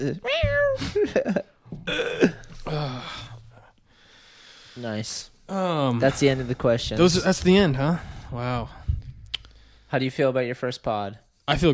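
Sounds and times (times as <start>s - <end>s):
person imitating cat meows with rising and falling pitch: 0.0s - 0.9s
speech: 0.0s - 2.3s, 4.8s - 8.8s, 9.9s - 11.7s.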